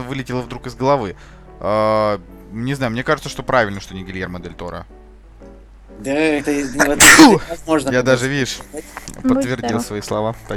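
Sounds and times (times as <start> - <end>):
speech: 0.0 - 5.0, 6.0 - 10.5
single sharp sneeze: 7.0 - 7.5.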